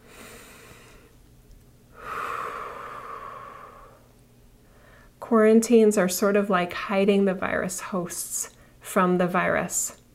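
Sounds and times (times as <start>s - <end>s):
deep breath with slight nasal whistle: 0.0s - 1.2s, 1.9s - 5.2s
speech: 5.3s - 10.0s.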